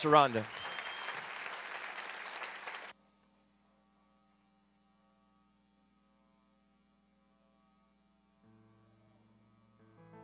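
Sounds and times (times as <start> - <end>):
speech: 0.0 - 0.6
crowd applauding with dense steady hand clapping: 0.0 - 2.9.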